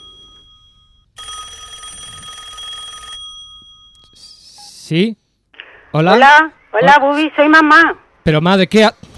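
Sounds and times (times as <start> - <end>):
telephone bell ringing in a radio studio: 0.0 - 4.2
low noise: 0.1 - 9.1
speech: 4.9 - 5.2, 5.9 - 9.1.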